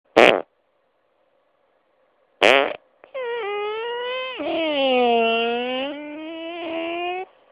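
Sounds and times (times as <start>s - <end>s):
fart in a room: 0.1s - 0.5s, 2.4s - 7.3s.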